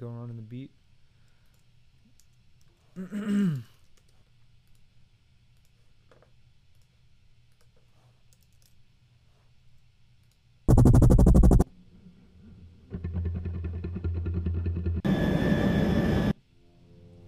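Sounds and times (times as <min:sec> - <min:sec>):
speech: 0:00.0 - 0:00.9, 0:03.0 - 0:03.7
helicopter sound effect with chopping engine drone and roaring whine: 0:10.7 - 0:11.6, 0:12.9 - 0:16.3.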